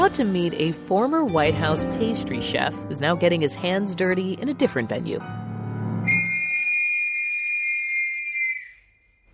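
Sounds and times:
speech: 0.1s - 5.4s
loud shrill factory whistle blast: 6.0s - 9.0s.

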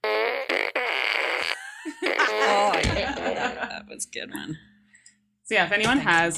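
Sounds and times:
novelty fart noise from a toy fart gun: 0.0s - 3.0s
laughter: 1.5s - 4.5s
speech: 3.2s - 4.7s, 5.5s - 6.3s.

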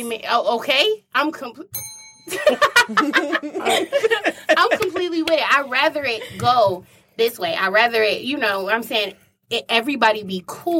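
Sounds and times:
speech: 0.0s - 10.7s
bright bell ding: 1.7s - 2.7s
laughter: 2.3s - 5.3s.

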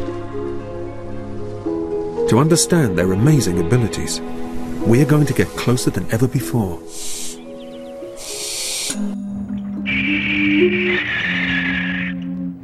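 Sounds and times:
speech: 2.3s - 7.2s
barn owl hissing and screeching: 6.8s - 9.0s, 10.0s - 12.2s.

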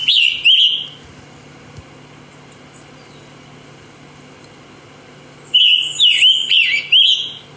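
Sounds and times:
scarlet tanager singing raspy song: 0.0s - 1.0s, 2.4s - 3.4s, 5.4s - 7.5s
faint hum: 0.0s - 7.5s.

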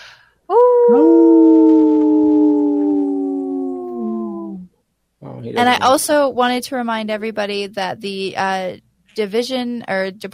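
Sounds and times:
two wolves howling together: 0.8s - 4.6s
speech: 0.9s - 1.2s, 5.5s - 10.3s.

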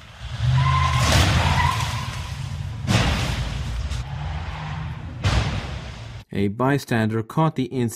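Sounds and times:
vehicle engine roaring: 0.0s - 6.2s
loud metallic crashes: 0.4s - 6.2s
speech: 6.3s - 7.9s.

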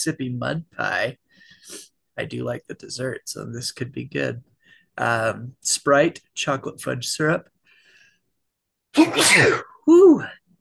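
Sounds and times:
speech: 0.0s - 7.5s, 8.9s - 10.4s
loud sneeze: 8.9s - 9.8s.

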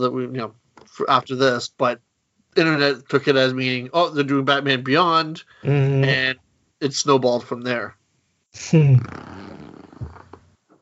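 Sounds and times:
speech: 0.0s - 9.6s
squeaky chair creaking: 9.0s - 10.7s.

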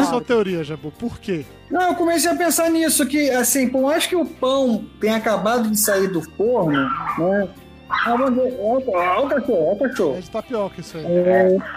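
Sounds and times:
speech: 0.1s - 11.7s
dog barking and yipping: 6.7s - 8.4s, 11.3s - 11.7s.

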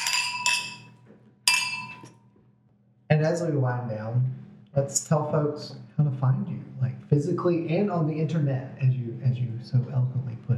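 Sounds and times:
wine glasses clinking together in a toast: 0.0s - 2.1s
speech: 3.1s - 10.5s.

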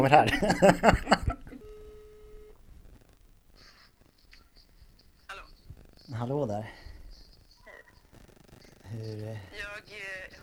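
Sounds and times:
speech: 0.0s - 1.3s, 6.2s - 6.8s, 8.9s - 10.4s
telephone call connecting rough bursts: 3.0s - 9.8s.

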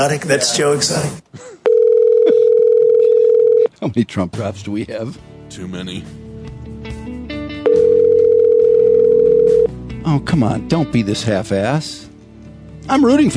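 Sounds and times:
speech: 0.0s - 1.6s, 3.8s - 6.2s, 10.0s - 12.0s, 12.9s - 13.3s
telephone line ringback tone on a call to a missing-person tip line: 1.7s - 3.7s, 7.7s - 9.7s.

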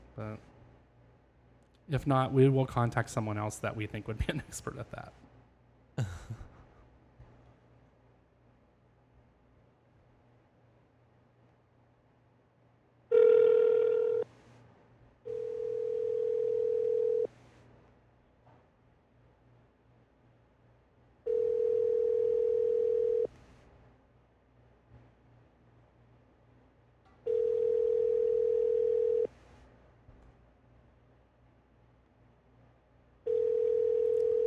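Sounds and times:
faint hum: 0.0s - 34.4s
speech: 0.2s - 0.5s, 1.9s - 5.2s, 6.0s - 6.4s
outgoing phone call ringback tone: 13.1s - 14.3s, 15.3s - 17.3s, 21.3s - 23.3s, 27.3s - 29.3s, 33.3s - 34.4s.

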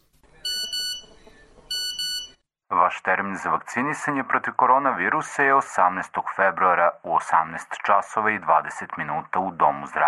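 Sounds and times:
phone text message notification beeps: 0.4s - 2.4s
speech: 2.9s - 10.0s.

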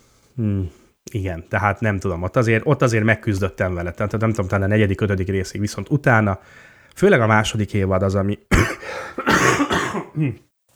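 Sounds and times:
speech: 0.4s - 10.5s
person coughing in a loud harsh fit: 8.5s - 10.4s
throat clearing: 8.5s - 10.5s.

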